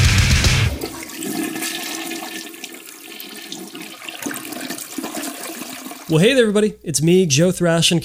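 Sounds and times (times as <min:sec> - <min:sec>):
toilet flushing: 0:00.6 - 0:06.4
speech: 0:06.1 - 0:08.0.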